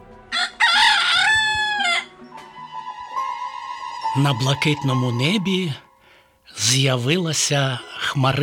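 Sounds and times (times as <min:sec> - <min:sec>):
rooster in a yard crowing loudly at sunrise: 0:00.3 - 0:02.1
speech: 0:04.2 - 0:05.8, 0:06.6 - 0:08.4.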